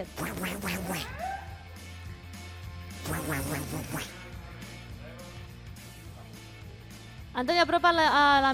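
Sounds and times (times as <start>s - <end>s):
speech: 0.0s - 0.7s, 3.1s - 4.2s, 7.4s - 8.5s
duck quacking: 0.0s - 1.1s, 3.0s - 4.1s.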